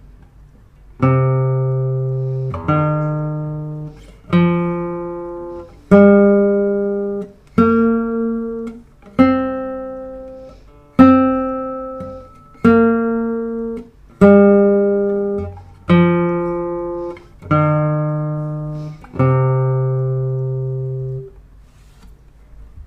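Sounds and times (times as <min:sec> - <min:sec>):
slendro scale melody: 0:01.1 - 0:21.3.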